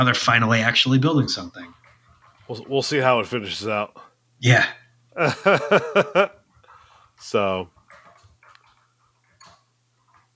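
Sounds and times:
speech: 0.0s - 1.8s, 2.5s - 6.4s, 7.2s - 7.8s
steady low electrical hum: 0.0s - 10.3s
laughter: 5.2s - 6.4s
typing on a loud computer keyboard: 6.7s - 10.3s.

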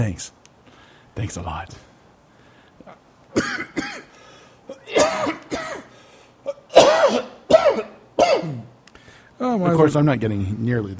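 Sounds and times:
speech: 0.0s - 0.4s, 1.2s - 1.9s, 9.4s - 10.9s
person clearing throat: 3.4s - 4.1s, 4.7s - 8.8s
person coughing harshly: 3.4s - 4.1s, 4.7s - 8.7s.

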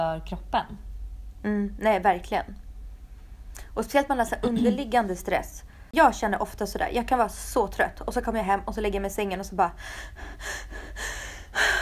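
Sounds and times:
speech: 0.0s - 2.6s, 3.8s - 11.8s
person imitating frantic gasping: 9.8s - 11.8s.

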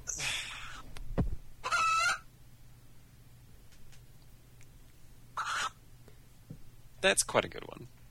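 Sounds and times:
low steady hum: 0.0s - 8.0s
chicken clucking and squawking: 1.6s - 2.3s, 5.4s - 5.8s
speech: 7.0s - 8.0s.

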